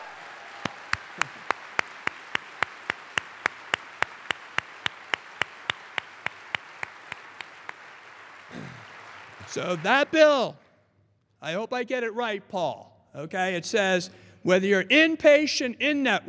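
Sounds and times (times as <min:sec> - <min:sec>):
audience applauding: 0:00.0 - 0:10.6
speech: 0:09.5 - 0:10.6, 0:11.4 - 0:16.2.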